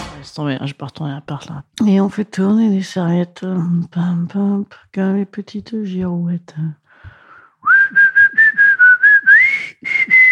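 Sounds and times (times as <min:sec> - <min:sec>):
speech: 0:00.2 - 0:06.8
person whistling a tune: 0:07.6 - 0:10.3.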